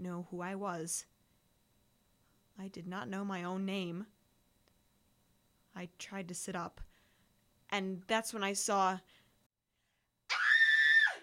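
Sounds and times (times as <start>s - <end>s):
speech: 0.0s - 1.1s, 2.6s - 4.2s, 5.8s - 6.9s, 7.7s - 9.2s
high-pitched scream: 10.3s - 11.2s.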